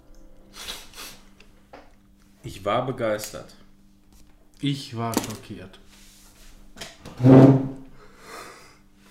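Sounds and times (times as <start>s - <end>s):
speech: 2.4s - 3.6s, 4.6s - 5.8s, 7.2s - 7.5s
chair legs scraping across a hard floor: 6.2s - 7.8s.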